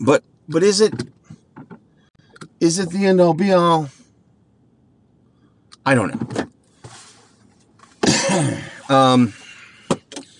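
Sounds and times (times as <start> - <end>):
speech: 0.0 - 1.2, 2.6 - 4.0, 5.8 - 6.4, 8.3 - 9.4
person coughing harshly: 8.0 - 8.9.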